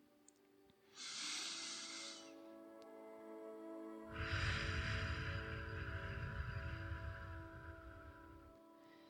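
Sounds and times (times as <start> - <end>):
longer fuller breathy exhale out through the mouth: 0.9 - 2.4, 4.1 - 9.0
short hissy inhale through the nose: 0.9 - 2.4, 4.1 - 9.0.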